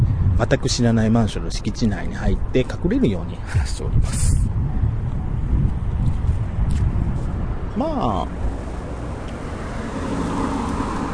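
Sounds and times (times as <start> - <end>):
car traffic passing on a nearby road: 0.0 - 11.1
speech: 0.4 - 4.6, 7.8 - 8.5.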